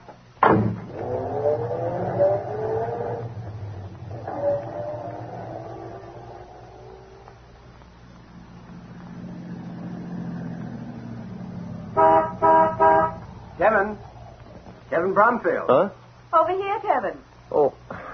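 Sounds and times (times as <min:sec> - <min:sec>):
car engine rumbling as the vehicle rolls up and idles: 0:00.0 - 0:15.4
short loud car horn honks: 0:11.9 - 0:13.3
speech: 0:15.2 - 0:17.8.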